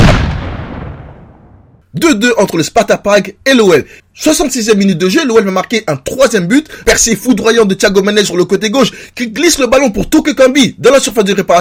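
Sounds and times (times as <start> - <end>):
cannon shot boom: 0.0 - 1.8
speech: 2.0 - 11.5.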